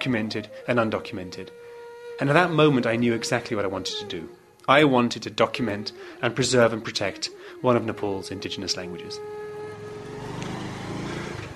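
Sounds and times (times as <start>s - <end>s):
speech: 0.0s - 1.6s, 2.2s - 9.4s
motorbike engine humming: 9.2s - 11.5s
busy street traffic in Kathmandu, Nepal: 9.4s - 11.5s.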